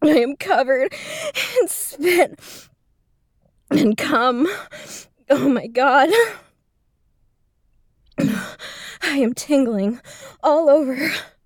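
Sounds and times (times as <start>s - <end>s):
speech: 0.0s - 2.7s, 3.7s - 6.4s, 8.2s - 11.3s
person coughing harshly: 8.2s - 8.6s.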